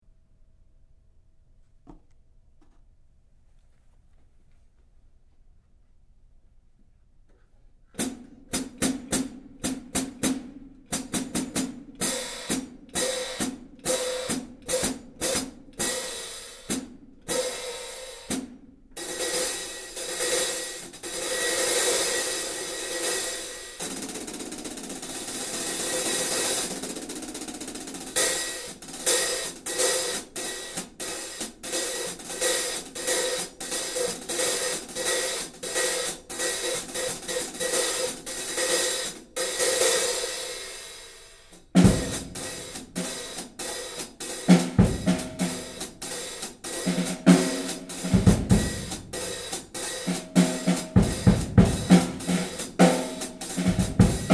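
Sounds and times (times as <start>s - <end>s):
15 inch hi-hat cymbal: 8.0s - 54.3s.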